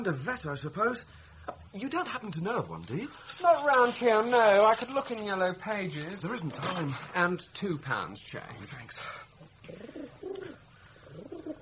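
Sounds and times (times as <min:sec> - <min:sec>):
speech: 0:00.0 - 0:09.8
pigeon cooing: 0:09.4 - 0:11.5.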